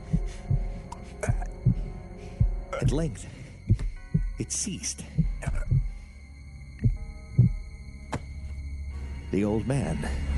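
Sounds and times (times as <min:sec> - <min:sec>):
muffled heartbeat of an old man: 0:00.0 - 0:06.0, 0:06.8 - 0:07.7
speech: 0:02.8 - 0:03.8, 0:04.4 - 0:05.2, 0:09.3 - 0:10.3.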